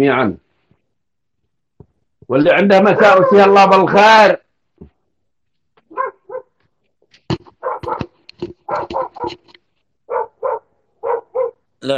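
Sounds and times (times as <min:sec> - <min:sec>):
speech: 0:00.0 - 0:00.4, 0:02.3 - 0:04.9, 0:08.4 - 0:10.2
dog barking and yelping: 0:02.7 - 0:03.8, 0:05.9 - 0:06.6, 0:07.6 - 0:09.5, 0:10.1 - 0:11.7.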